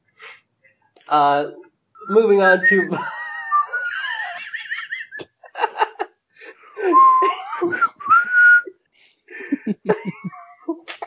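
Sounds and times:
speech: 1.1s - 3.2s
person whistling a jazzy melody: 2.0s - 3.8s, 6.8s - 8.7s
person laughing: 2.9s - 6.1s, 6.7s - 8.5s, 9.3s - 11.0s.

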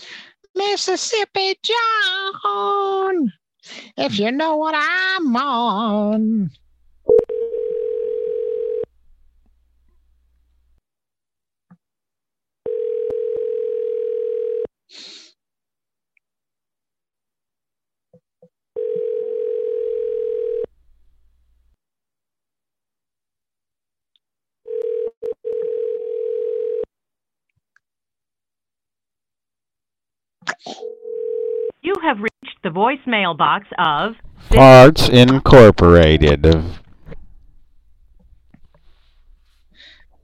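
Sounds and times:
speech: 0.8s - 6.6s, 31.9s - 36.8s
telephone line tone while placing a call: 7.1s - 8.9s, 12.7s - 14.7s, 18.8s - 20.7s, 24.7s - 26.9s, 30.8s - 31.8s.

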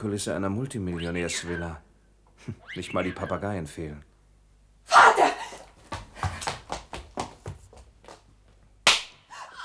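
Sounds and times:
speech: 0.0s - 4.1s
slap in the face: 8.9s - 9.2s.

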